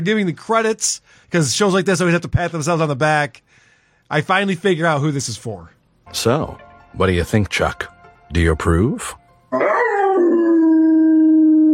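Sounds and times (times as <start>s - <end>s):
speech: 0.0s - 9.7s
dog howling: 9.5s - 11.7s.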